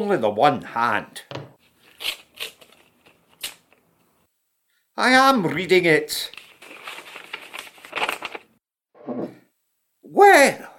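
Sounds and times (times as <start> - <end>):
speech: 0.0 - 1.4, 2.0 - 2.5, 5.0 - 6.4, 10.1 - 10.7
envelope being torn open: 1.8 - 3.7, 6.3 - 8.5.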